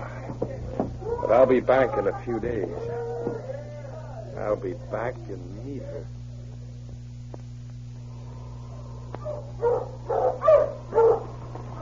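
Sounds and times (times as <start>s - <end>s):
steady low hum: 0.0s - 11.8s
speech: 1.3s - 3.4s, 4.4s - 6.2s
sled dog team barking and yelping on the road to 40 Mile: 9.2s - 11.8s.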